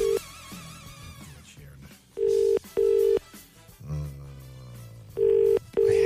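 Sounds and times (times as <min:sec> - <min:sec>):
outgoing phone call ringing tone: 0:00.0 - 0:00.2, 0:02.2 - 0:03.2, 0:05.2 - 0:06.0
faint music: 0:00.0 - 0:06.0.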